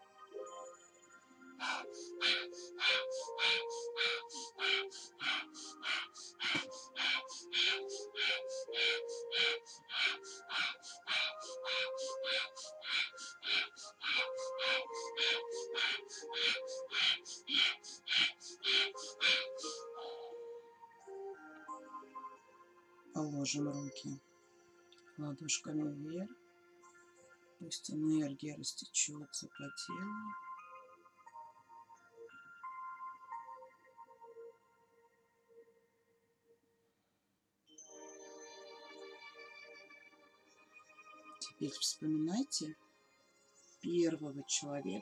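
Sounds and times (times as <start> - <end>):
forceful breaths in and out in a quick steady rhythm: 1.6 - 20.5
speech: 23.5 - 24.3, 25.2 - 26.4, 27.6 - 30.4, 41.6 - 42.9, 43.8 - 45.0.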